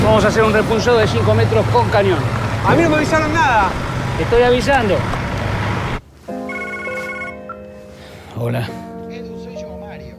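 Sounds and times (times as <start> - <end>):
speech: 0.2 - 5.2, 8.4 - 8.8
mobile phone ringtone with a bright electronic melody: 6.3 - 7.8.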